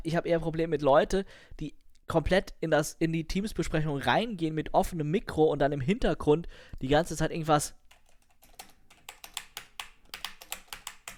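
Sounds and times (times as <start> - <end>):
speech: 0.0 - 7.8
rapid forceful typing on a computer keyboard: 7.9 - 11.1.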